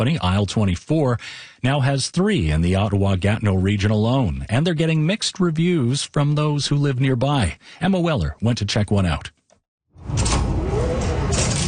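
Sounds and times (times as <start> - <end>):
speech: 0.0 - 9.4
mini grocery store sliding door opening: 10.0 - 11.6.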